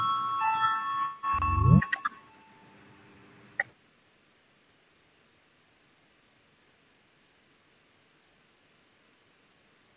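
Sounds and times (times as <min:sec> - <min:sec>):
parliamentary voting bell ringing: 0:00.0 - 0:02.3
low rising hum: 0:01.3 - 0:02.0.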